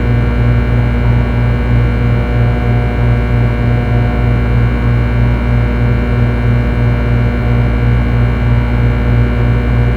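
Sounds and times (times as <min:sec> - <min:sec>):
industrial hum: 0:00.0 - 0:09.9.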